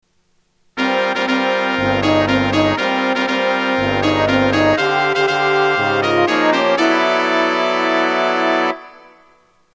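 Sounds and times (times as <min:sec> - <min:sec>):
opening fanfare: 0:00.8 - 0:09.4.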